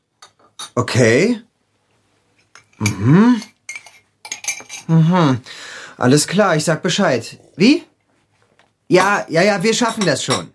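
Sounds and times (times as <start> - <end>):
cutlery and dishes clinking at breakfast in a kitchen: 0.2 - 0.8, 2.4 - 4.9, 9.0 - 10.5
speech: 0.8 - 1.5, 2.8 - 3.5, 4.9 - 7.9, 8.9 - 10.5.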